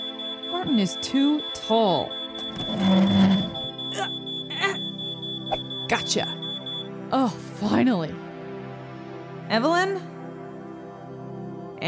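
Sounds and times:
smoke alarm sounding a shrill high-pitched tone: 0.0s - 6.9s
speech: 0.6s - 3.3s, 4.0s - 4.8s, 5.9s - 6.4s, 7.1s - 8.2s, 9.5s - 10.1s.

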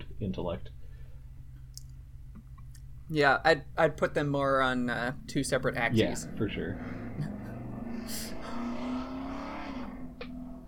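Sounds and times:
speech: 0.2s - 0.8s, 3.1s - 7.3s
motorcycle engine revving outside a window: 4.5s - 10.6s.

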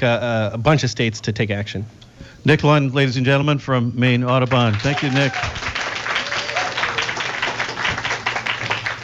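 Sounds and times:
speech: 0.0s - 5.7s
faint hum: 0.0s - 9.0s
live audience applause: 4.5s - 9.0s.

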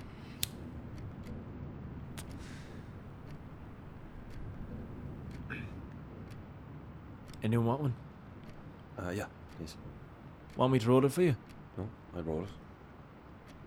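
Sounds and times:
low rumble of room noise: 0.0s - 13.6s
clock ticking: 3.2s - 5.5s
speech: 7.4s - 8.1s, 9.0s - 10.0s, 10.6s - 12.6s.

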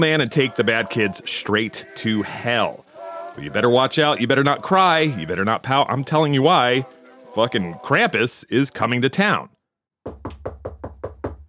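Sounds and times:
speech: 0.0s - 2.8s, 3.4s - 10.4s
firm knocks on a door: 10.0s - 11.4s.

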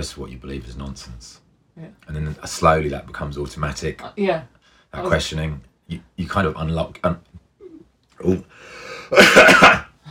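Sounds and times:
speech: 0.0s - 7.3s, 8.2s - 10.0s
person clearing throat: 9.1s - 10.0s.

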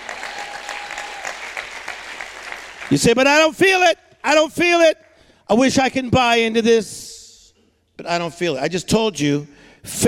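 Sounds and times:
crowd applauding: 0.0s - 3.2s
speech: 2.9s - 7.1s, 8.0s - 10.0s.

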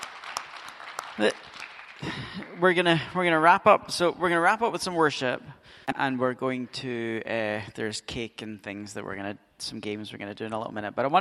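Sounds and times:
church audience clapping after a sermon: 0.0s - 3.5s
speech: 1.2s - 11.1s.

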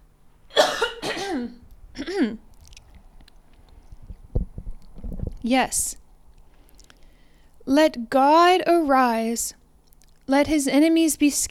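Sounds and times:
man clearing his throat: 0.6s - 2.4s
speech: 1.4s - 2.5s, 5.4s - 6.0s, 7.7s - 9.6s, 10.3s - 11.4s
faint soft clicks: 2.5s - 5.4s, 6.3s - 7.1s, 9.8s - 10.3s.

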